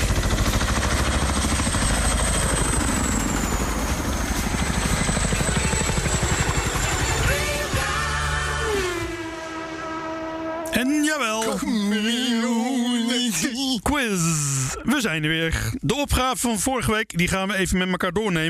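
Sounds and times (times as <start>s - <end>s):
rising helicopter engine whine: 0.0s - 13.6s
helicopter rotor chopping: 0.0s - 13.8s
speech: 14.8s - 18.4s.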